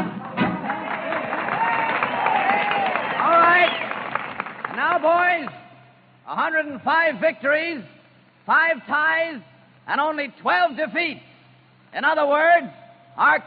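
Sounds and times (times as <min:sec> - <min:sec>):
crowd shouting and whooping at a campus rally: 0:00.2 - 0:03.8
large crowd applauding at a campus rally: 0:00.3 - 0:05.6
speech: 0:06.9 - 0:11.3, 0:11.9 - 0:13.4.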